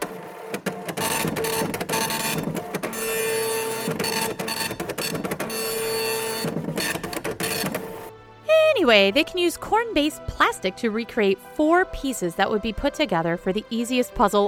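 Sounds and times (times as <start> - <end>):
old dot-matrix printer printing: 0.0 - 8.1
speech: 8.9 - 14.4.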